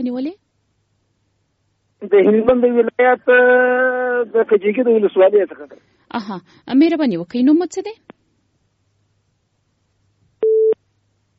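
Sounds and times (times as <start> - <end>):
speech: 0.0 - 0.4, 2.0 - 8.1
telephone busy tone after a phone-in call is cut off: 10.4 - 10.8.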